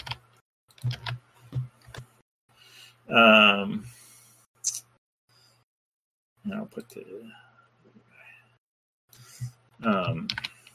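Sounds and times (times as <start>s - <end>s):
typing on a computer keyboard: 0.0s - 0.2s, 0.8s - 1.2s, 10.0s - 10.7s
speech: 3.1s - 4.0s, 6.5s - 8.0s, 9.4s - 10.5s.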